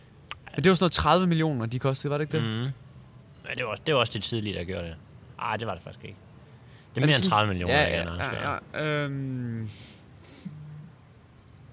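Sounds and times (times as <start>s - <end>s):
speech: 0.6s - 2.8s, 3.5s - 6.3s, 6.9s - 9.9s
low hooting bird call: 8.5s - 11.7s
high-pitched whistle: 9.8s - 11.7s.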